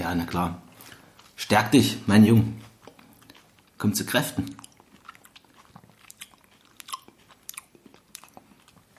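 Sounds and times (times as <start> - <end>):
speech: 0.1 - 0.7, 1.4 - 2.7, 3.8 - 4.6
wet chewing and lip-smacking while eating: 0.8 - 1.5, 2.5 - 8.9.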